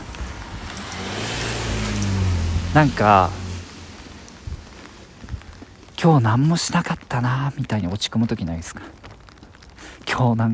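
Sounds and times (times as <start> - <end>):
car engine rumbling as a car approaches on the road: 0.0 - 6.0
wind noise outdoors: 0.0 - 7.1
speech: 2.8 - 3.4, 6.0 - 9.0, 10.2 - 10.5.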